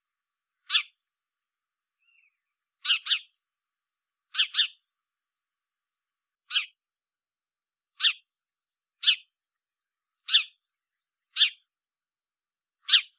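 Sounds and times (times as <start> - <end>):
house sparrow Passer domesticus chirping: 0.6 - 1.0, 2.0 - 3.4, 4.3 - 4.8, 6.5 - 6.8, 8.0 - 8.2, 9.0 - 9.3, 10.2 - 11.7, 12.8 - 13.1.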